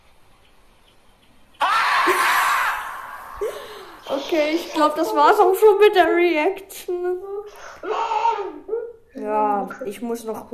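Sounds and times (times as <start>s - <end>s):
marmot screaming: 1.6s - 4.2s
speech: 4.3s - 7.3s, 9.3s - 10.5s.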